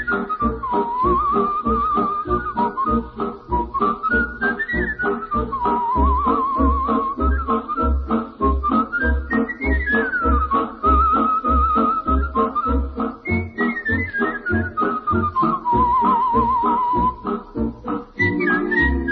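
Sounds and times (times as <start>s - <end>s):
skilled whistler whistling a vibrato melody: 0.0s - 19.1s.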